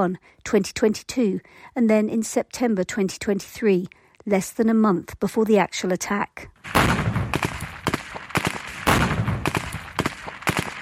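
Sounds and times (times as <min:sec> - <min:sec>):
speech: 0:00.0 - 0:07.4
gunfire from militant training manoeuvres in mock villages: 0:06.6 - 0:10.7.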